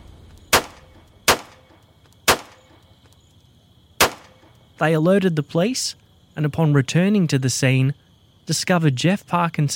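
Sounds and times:
gunshots: 0:00.5 - 0:02.7, 0:04.0 - 0:04.4
speech: 0:04.8 - 0:09.7.

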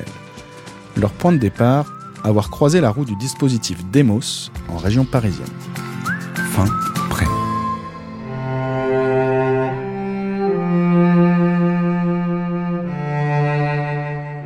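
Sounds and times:
speech: 0:01.0 - 0:05.9, 0:06.6 - 0:07.4
cello playing sustained low notes: 0:04.6 - 0:14.4.

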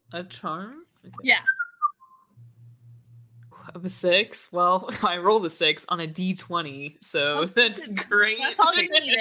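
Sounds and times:
speech: 0:00.1 - 0:01.6, 0:03.7 - 0:09.1
person whistling with downward sliding pitch: 0:01.3 - 0:02.4.

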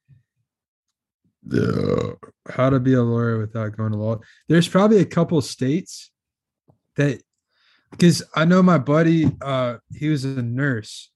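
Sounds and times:
loud burp: 0:01.4 - 0:02.5
speech: 0:01.5 - 0:06.1, 0:07.0 - 0:07.3, 0:07.9 - 0:11.1.

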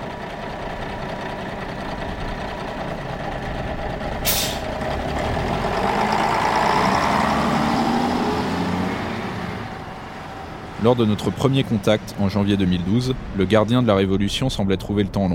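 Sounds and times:
large green bus engine rumbling in Homs Syria: 0:00.0 - 0:15.3
bus air brakes hiss: 0:04.2 - 0:04.7
speech: 0:10.8 - 0:15.3.

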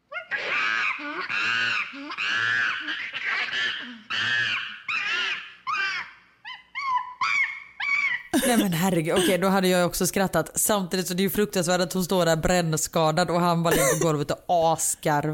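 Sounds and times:
angry chimpanzee screaming, recorded from a video: 0:00.0 - 0:08.4
laughter: 0:08.4 - 0:09.4, 0:13.7 - 0:14.1
speech: 0:08.6 - 0:15.3.

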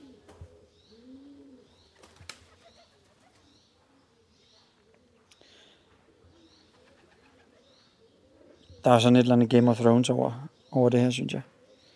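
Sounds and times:
pigeons cooing: 0:00.0 - 0:05.3, 0:05.9 - 0:09.2, 0:11.4 - 0:11.9
steady outdoor noise in a peaceful place: 0:00.0 - 0:11.9
pigeon wings flapping: 0:02.0 - 0:03.4
speech: 0:08.8 - 0:11.5.

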